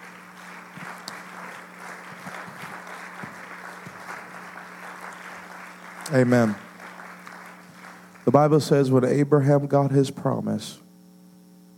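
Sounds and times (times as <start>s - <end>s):
audience clapping during a worship service: 0.0s - 9.2s
speech: 6.1s - 6.6s, 8.4s - 10.8s.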